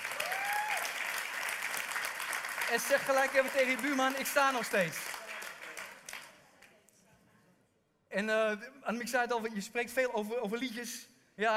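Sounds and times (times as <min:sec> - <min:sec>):
audience applause: 0:00.0 - 0:06.3
speech: 0:02.7 - 0:05.1, 0:08.2 - 0:11.5.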